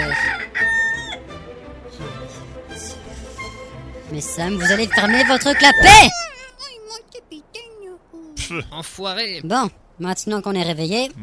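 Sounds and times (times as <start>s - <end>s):
rooster crowing loud and close: 0.0s - 1.3s, 4.6s - 6.4s
speech: 4.1s - 6.2s, 8.5s - 11.2s.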